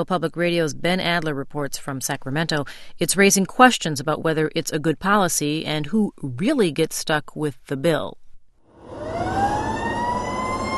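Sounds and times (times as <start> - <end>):
speech: 0.0 - 8.2
fire engine siren rising wail: 8.8 - 10.7.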